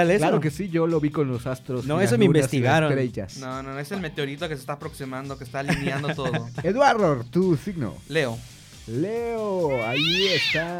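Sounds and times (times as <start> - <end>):
speech: 0.0 - 10.7
laughter: 5.7 - 6.6
person imitating a cat meowing: 9.7 - 10.7.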